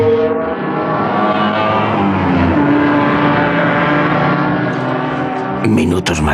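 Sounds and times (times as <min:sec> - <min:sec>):
sports car engine revving and driving off: 0:00.2 - 0:05.6
speech: 0:05.7 - 0:06.3.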